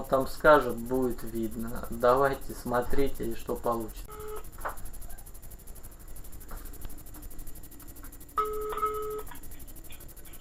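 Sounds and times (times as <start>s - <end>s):
speech: 0.1s - 4.3s
telephone ringback tone while a call is placed: 4.1s - 4.5s, 8.4s - 9.6s.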